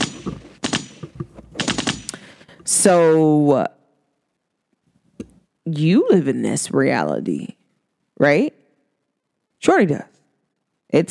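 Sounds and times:
rapid gunfire sound effect: 0:01.6 - 0:02.1
speech: 0:02.7 - 0:03.8, 0:05.7 - 0:07.6, 0:08.2 - 0:08.6, 0:09.6 - 0:10.1.

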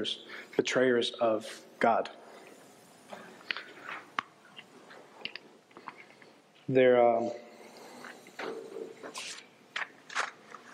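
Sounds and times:
speech: 0:00.0 - 0:02.2, 0:06.7 - 0:07.4
page being turned: 0:09.1 - 0:10.7.

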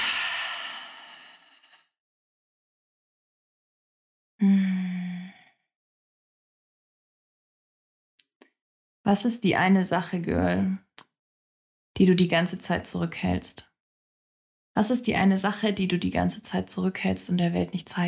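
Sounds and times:
person exhaling deeply: 0:00.0 - 0:01.7, 0:04.4 - 0:05.5
short breathy sigh with a low voiced tone: 0:00.0 - 0:01.7, 0:04.4 - 0:05.5
speech: 0:09.0 - 0:10.8, 0:12.0 - 0:13.7, 0:14.8 - 0:18.0.

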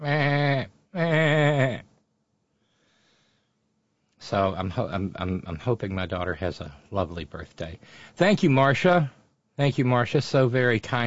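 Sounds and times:
person mimicking a baby goat's bleat: 0:00.0 - 0:01.8
speech: 0:04.3 - 0:11.0.

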